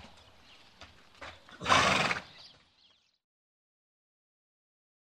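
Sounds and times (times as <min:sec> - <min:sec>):
horse giving a short harsh breathy whinny: 0:01.6 - 0:02.4.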